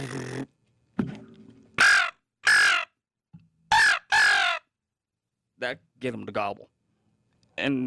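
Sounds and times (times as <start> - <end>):
bite-and-blow handheld crow call blown with the tongue rolled: 1.8 - 3.0, 3.7 - 4.8
speech: 5.6 - 6.8, 7.6 - 7.8.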